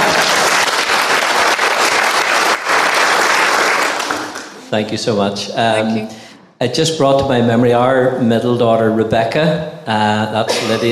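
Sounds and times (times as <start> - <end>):
room full of people clapping steadily: 0.0 - 4.7
speech: 4.7 - 10.9.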